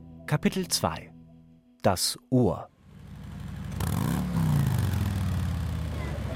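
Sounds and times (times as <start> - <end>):
speech: 0.3 - 1.2, 1.8 - 2.7
V-twin motorcycle engine starting and idling with a brief rev: 2.8 - 6.3.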